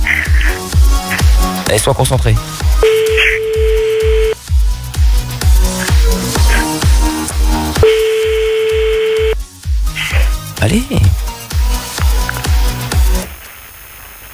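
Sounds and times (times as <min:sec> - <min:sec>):
loud rhythmic thumping music beat: 0:00.2 - 0:12.2
speech: 0:01.7 - 0:03.0, 0:10.6 - 0:11.2
telephone tones as a number is dialed for a prank phone call: 0:02.8 - 0:04.4, 0:07.8 - 0:09.4.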